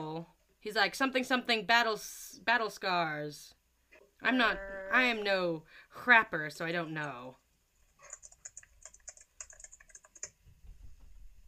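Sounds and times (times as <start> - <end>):
speech: 0.6 - 3.6, 4.2 - 7.4
typing on a computer keyboard: 7.9 - 10.4.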